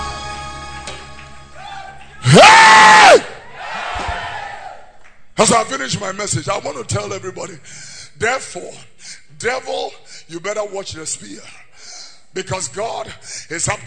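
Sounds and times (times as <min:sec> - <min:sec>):
large crowd screaming and yelling: 0:01.5 - 0:04.8
speech: 0:05.4 - 0:11.7, 0:12.3 - 0:13.8.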